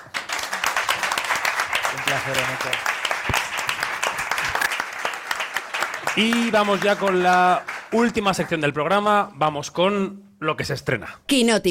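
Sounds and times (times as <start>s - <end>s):
audience applause: 0.0s - 8.9s
speech: 2.1s - 3.4s, 6.1s - 11.7s.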